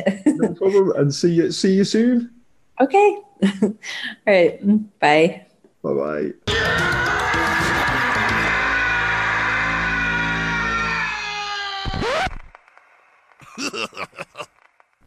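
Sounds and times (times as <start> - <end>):
laughter: 0.0 - 1.1, 6.5 - 8.9, 13.4 - 14.5
speech: 0.0 - 7.0
loud harsh cartoon monster scream: 6.5 - 12.3, 13.5 - 14.4.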